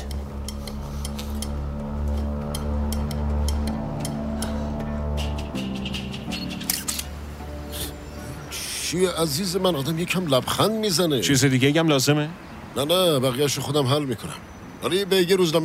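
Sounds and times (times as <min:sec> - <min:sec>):
steady low droning hum: 0:00.0 - 0:05.8
camera shutter clicks taking a photo: 0:06.5 - 0:07.1
speech: 0:08.9 - 0:15.6.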